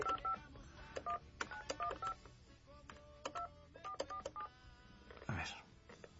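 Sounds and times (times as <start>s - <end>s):
telephone DTMF keypad dialing tones: 0.0s - 0.4s, 1.0s - 2.2s, 3.3s - 4.5s.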